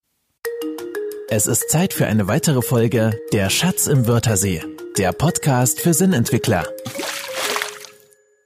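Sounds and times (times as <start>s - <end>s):
speech: 0.6s - 7.0s
water splashing and trickling: 6.8s - 8.2s.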